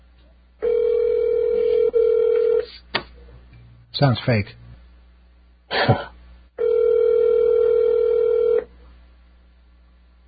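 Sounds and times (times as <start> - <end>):
ringback tone on an outgoing telephone call: 0.6 - 2.7, 6.6 - 8.7
speech: 4.0 - 4.6, 5.9 - 6.1.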